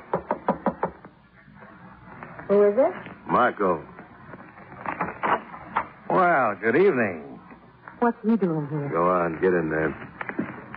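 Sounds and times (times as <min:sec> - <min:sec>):
knocking on a door: 0:00.0 - 0:01.0
speech: 0:02.5 - 0:03.9, 0:06.2 - 0:07.3, 0:08.0 - 0:10.1.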